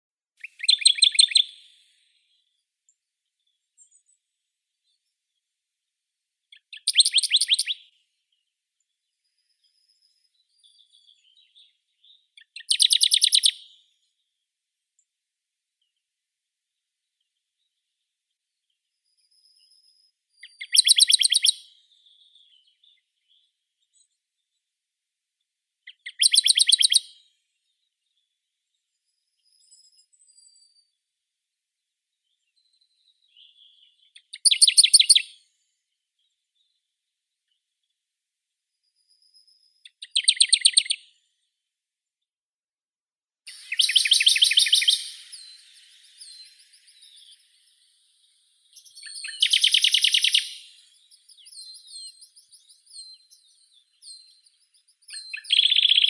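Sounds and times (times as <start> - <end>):
Acrocephalus aedon thick-billed warbler: 0.4 - 1.8, 6.5 - 7.8, 12.4 - 13.6, 20.4 - 21.5, 25.9 - 27.0, 33.3 - 35.2, 39.2 - 41.0, 43.5 - 56.0.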